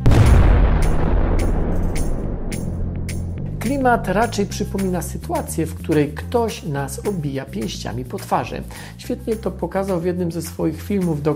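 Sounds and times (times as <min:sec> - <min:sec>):
sharp crackling bursts: 0:00.0 - 0:03.8
loud deep bomb explosion rumbling: 0:00.0 - 0:04.3
speech: 0:03.6 - 0:11.3.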